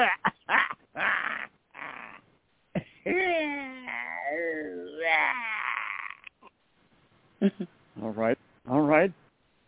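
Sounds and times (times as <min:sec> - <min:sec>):
person imitating a dog barking and growling: 0:00.0 - 0:02.2, 0:03.1 - 0:06.3
speech: 0:07.4 - 0:09.2.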